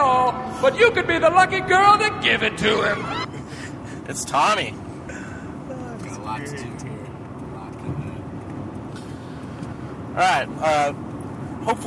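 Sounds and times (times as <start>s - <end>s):
road noise inside a moving car: 0.0s - 11.8s
speech: 0.6s - 3.2s, 4.1s - 4.8s, 6.3s - 6.9s, 10.2s - 11.0s, 11.6s - 11.8s.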